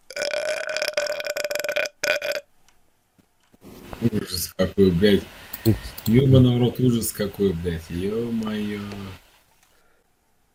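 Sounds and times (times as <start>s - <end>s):
long loud rasping human burp: 0.0s - 2.5s
speech: 4.0s - 9.2s.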